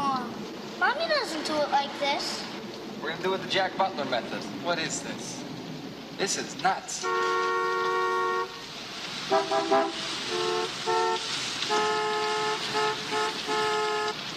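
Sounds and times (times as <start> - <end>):
street traffic rumble: 0.0 - 14.3
speech: 1.3 - 5.5, 6.2 - 8.0, 9.3 - 11.0
several car horns honking: 7.0 - 8.7, 9.3 - 14.3.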